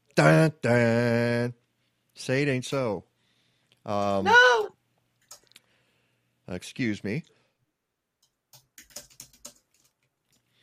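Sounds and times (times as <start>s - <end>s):
speech: 0.2s - 1.6s, 2.2s - 3.1s, 3.8s - 4.6s, 6.5s - 7.4s
rapid typing on a computer keyboard: 5.2s - 5.6s, 8.2s - 10.4s.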